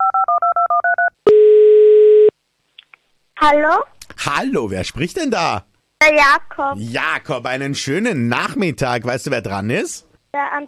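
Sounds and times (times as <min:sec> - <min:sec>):
telephone ringing tone: 0:00.0 - 0:02.3
speech: 0:03.4 - 0:10.6.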